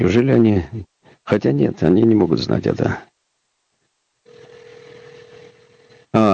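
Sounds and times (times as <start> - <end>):
speech: 0.0 - 3.1, 6.1 - 6.3
telephone line tone while calling a studio number: 4.2 - 6.2.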